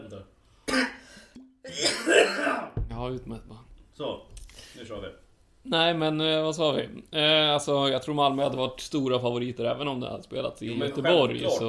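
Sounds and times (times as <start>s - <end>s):
person coughing harshly: 0.7s - 1.1s, 1.7s - 2.8s
speech: 3.1s - 11.6s.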